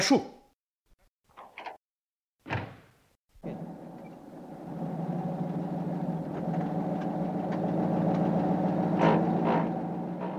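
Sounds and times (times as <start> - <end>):
black open-top Opel Kapitän car engine rumbling through city streets: 3.4 - 10.3.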